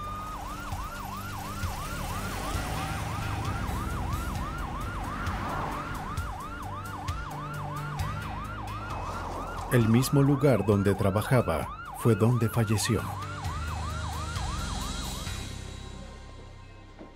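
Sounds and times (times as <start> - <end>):
low rumble of traffic and engine noise: 0.0 - 12.0
ambulance siren wailing: 0.0 - 16.2
speech: 9.7 - 13.3.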